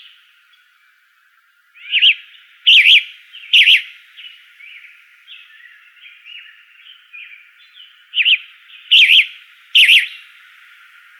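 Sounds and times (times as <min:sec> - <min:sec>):
flame-colored tanager singing rough burry phrases in Arizona: 0:01.8 - 0:10.4.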